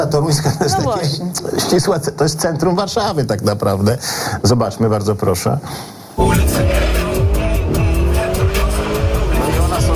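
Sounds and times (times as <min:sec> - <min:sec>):
speech: 0:00.0 - 0:06.9
luxury car speeding along a Warsaw city expressway: 0:06.2 - 0:09.9.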